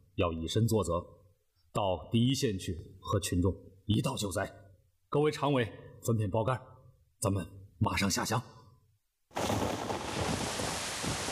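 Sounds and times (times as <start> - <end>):
speech: 0.2 - 8.6
low rumble of thunder: 9.4 - 11.3
rain pouring during a thunderstorm: 9.4 - 11.3.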